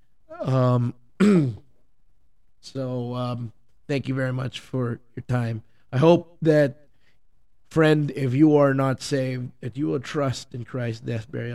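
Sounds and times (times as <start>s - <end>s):
speech: 0.3s - 1.6s, 2.7s - 6.8s, 7.7s - 11.5s
person with an irritated throat clearing throat: 0.3s - 1.7s.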